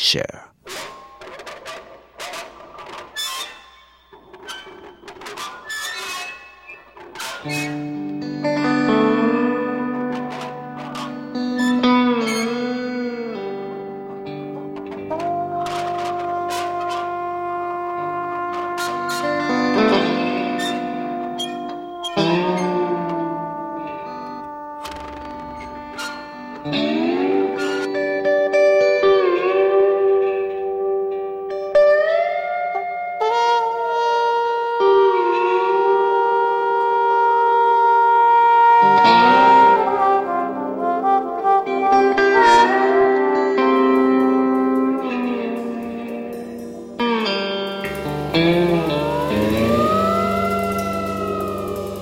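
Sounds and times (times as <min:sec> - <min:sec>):
speech: 0:00.0 - 0:00.5, 0:07.4 - 0:07.9
slide guitar with effects-laden reverb: 0:00.7 - 0:52.0
half-valve trumpet: 0:04.4 - 0:13.5, 0:14.8 - 0:28.0, 0:33.2 - 0:52.0.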